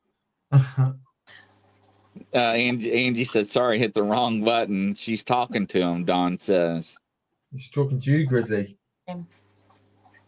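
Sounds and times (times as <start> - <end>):
speech: 0.5 - 1.4, 2.3 - 9.4
throat clearing during a paranormal investigation of haunted dolls: 0.6 - 0.9.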